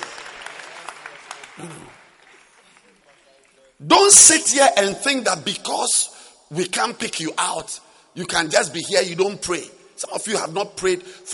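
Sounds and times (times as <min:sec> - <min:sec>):
audience clapping hands in sustained applause: 0:00.0 - 0:03.6
speech: 0:01.6 - 0:02.0, 0:03.8 - 0:11.3.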